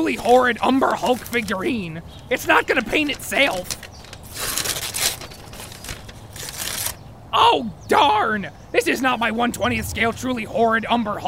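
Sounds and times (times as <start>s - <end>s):
speech: 0.0s - 4.5s, 7.3s - 11.2s
paper crinkling and tearing as a box is opened: 0.0s - 7.0s.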